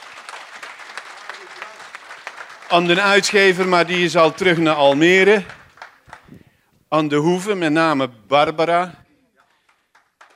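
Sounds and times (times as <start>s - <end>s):
audience applause at a book presentation: 0.0s - 6.4s, 9.4s - 10.3s
speech: 2.7s - 5.6s, 6.9s - 9.0s.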